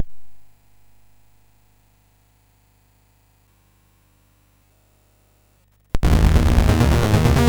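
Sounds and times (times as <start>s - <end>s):
swing music on Moog and MOS6581R4 sound chip: 6.0s - 7.4s.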